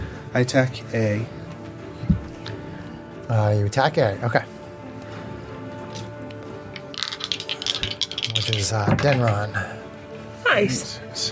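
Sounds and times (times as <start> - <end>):
speech: 0.3 - 1.4, 3.3 - 4.5, 8.4 - 9.8, 10.5 - 11.3
dice rattling and clattering in a dice tray: 6.8 - 9.4.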